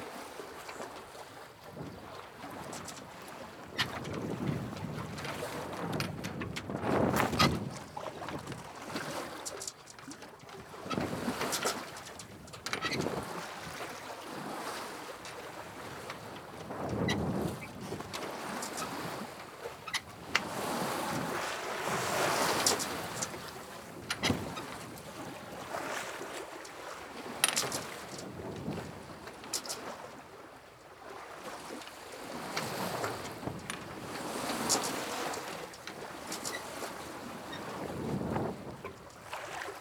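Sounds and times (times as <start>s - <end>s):
sailing boat: 0.0s - 39.8s.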